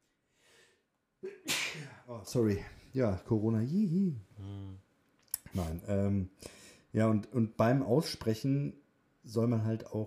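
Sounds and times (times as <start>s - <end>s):
person sneezing: 1.2s - 2.0s
speech: 2.1s - 4.8s, 5.5s - 10.0s.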